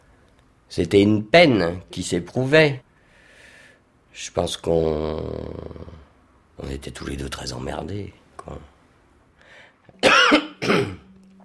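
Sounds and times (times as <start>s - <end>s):
speech: 0.7s - 2.8s, 4.2s - 6.0s, 6.6s - 8.7s
harsh coughs with a rough throat-clearing quality: 10.0s - 11.1s.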